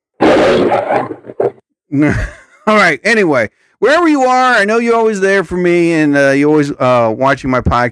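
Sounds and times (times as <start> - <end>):
lion roaring: 0.2 - 1.6
speech: 0.7 - 7.9.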